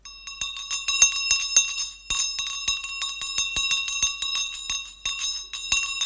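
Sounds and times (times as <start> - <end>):
hired hand bell ringing: 0.0 - 6.0.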